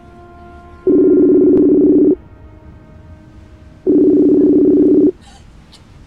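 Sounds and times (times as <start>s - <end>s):
low hiss: 0.0s - 6.0s
telephone calling tone while a call is placed: 0.9s - 2.2s, 3.9s - 5.2s.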